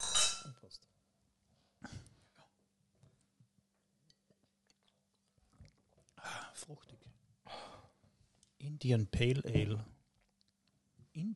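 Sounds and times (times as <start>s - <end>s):
beer and Sauvignon wine glasses clinking in a toast: 0.0s - 0.6s
speech: 6.5s - 7.8s, 8.6s - 10.0s, 11.2s - 11.3s.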